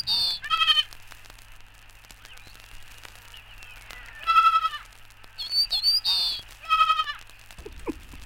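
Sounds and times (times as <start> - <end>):
young goat bleating: 0.1 - 0.9, 3.9 - 4.9, 6.1 - 7.3.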